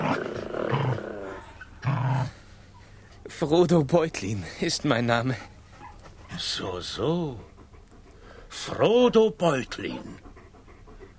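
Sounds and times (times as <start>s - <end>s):
low rumbling dog growls: 0.0s - 2.6s, 5.2s - 11.1s
speech: 3.4s - 5.5s, 6.4s - 7.5s, 8.5s - 10.3s.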